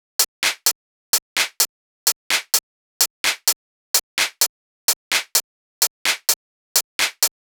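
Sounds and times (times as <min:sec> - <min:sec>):
tech house drums: 0:00.4 - 0:00.8, 0:01.4 - 0:01.7, 0:02.3 - 0:03.6, 0:04.2 - 0:05.4, 0:06.0 - 0:07.3.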